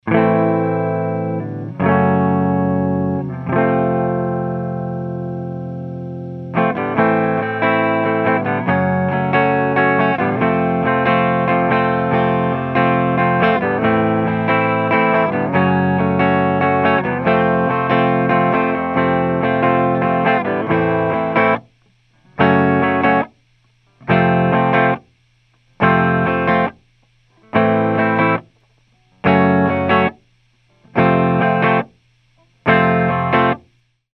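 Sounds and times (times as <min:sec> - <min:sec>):
clean electric guitar through an amp: 0:00.0 - 0:33.8.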